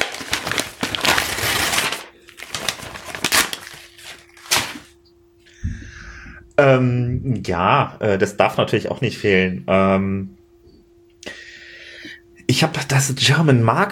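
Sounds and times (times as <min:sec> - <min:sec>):
wrapping paper crinkling as a gift is unwrapped: 0:00.0 - 0:05.0
faint steady hum: 0:00.0 - 0:13.9
speech: 0:06.6 - 0:10.4, 0:12.6 - 0:13.9.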